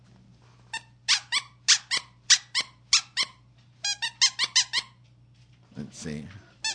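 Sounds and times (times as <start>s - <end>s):
squeaky breast-shaped novelty toy being squeezed: 0.7s - 5.0s
speech: 6.0s - 6.4s.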